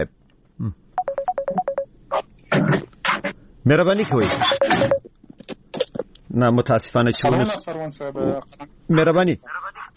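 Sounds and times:
speech: 0.0s - 0.8s, 3.6s - 4.9s, 6.3s - 9.5s
Skype ringtone for an incoming call: 1.0s - 1.9s, 4.4s - 5.1s.

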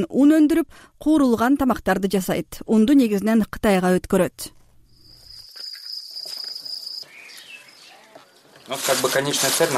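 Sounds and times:
speech: 0.0s - 4.6s, 8.7s - 9.7s
crickets chirping on an insect farm raised for flour: 4.8s - 7.9s.

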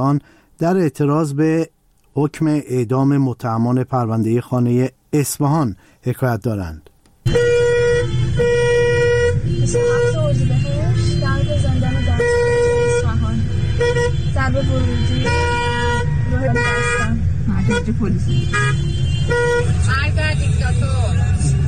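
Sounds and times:
speech: 0.0s - 7.5s, 17.7s - 21.1s
car horns honking in dense street traffic: 7.2s - 21.6s
rumble of engines in dense street traffic: 7.3s - 21.6s.

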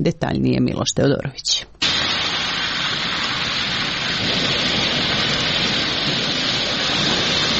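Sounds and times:
speech: 0.0s - 1.7s
heavy rain pouring in Ivanjica, southwestern Serbia: 1.8s - 7.5s.

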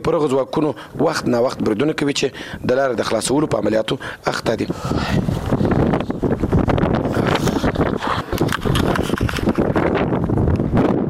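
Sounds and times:
speech: 0.0s - 5.5s
strong wind blowing dust across an area in Afghanistan's Sangin district: 2.4s - 11.0s.

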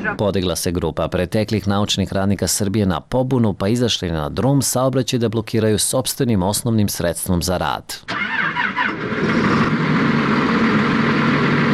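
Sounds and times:
speech: 0.0s - 9.6s
red tractor engine idling: 8.1s - 11.7s.

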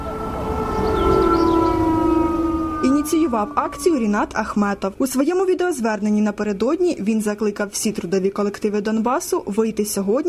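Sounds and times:
loud sustained industrial siren wailing across an open space: 0.0s - 6.2s
speech: 3.3s - 10.2s.

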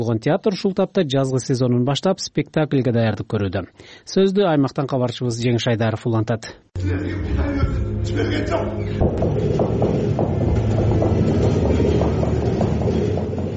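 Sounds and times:
speech: 0.0s - 10.4s
train rumble from trains running from west to east: 7.3s - 13.5s.

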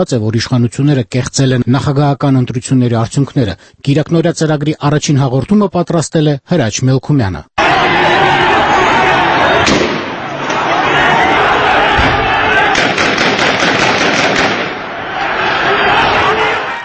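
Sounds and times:
speech: 0.0s - 7.9s
roar of crowd voices during street clashes between protesters and police: 7.6s - 12.8s, 14.8s - 16.8s
gunshots during street clashes between protesters and police: 9.6s - 10.8s, 11.7s - 15.0s.

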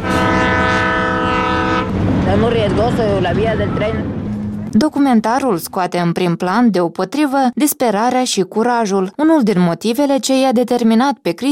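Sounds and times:
train horn blaring: 0.0s - 2.1s
passing train rumbling: 0.0s - 6.4s
speech: 2.3s - 11.5s.

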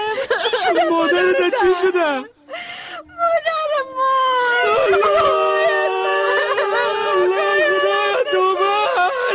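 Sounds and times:
laughter: 0.1s - 2.2s, 4.6s - 9.3s
speech: 0.4s - 2.3s
child crying loudly: 4.3s - 9.3s.

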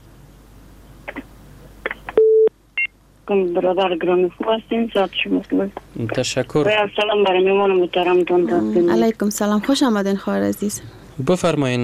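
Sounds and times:
telephone tone after a call is cut off: 2.2s - 2.9s
speech: 3.3s - 11.8s.

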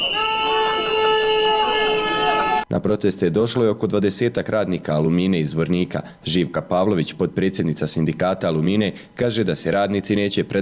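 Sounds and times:
whistles blaring at a workers' protest march: 0.0s - 2.6s
speech: 2.7s - 10.6s.

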